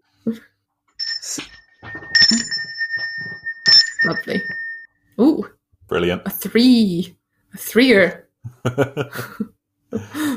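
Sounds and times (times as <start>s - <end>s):
speech: 0.2s - 0.5s, 4.1s - 4.6s, 5.2s - 10.3s
bright bell ringing with a clear sustained tone: 1.0s - 4.9s.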